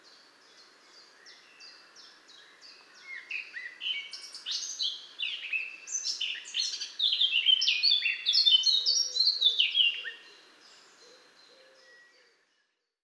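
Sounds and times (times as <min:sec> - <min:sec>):
Eurasian blackcap Sylvia atricapilla singing: 0:01.0 - 0:10.3.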